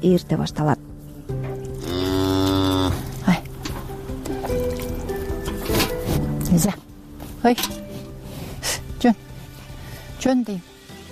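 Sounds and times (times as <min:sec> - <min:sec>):
speech: 0:00.0 - 0:00.9, 0:06.6 - 0:06.8, 0:07.4 - 0:07.8, 0:09.0 - 0:09.2, 0:10.2 - 0:10.7
early morning milking sounds: 0:01.6 - 0:06.3
cow mooing during early morning milking in a mountain village: 0:01.8 - 0:03.1.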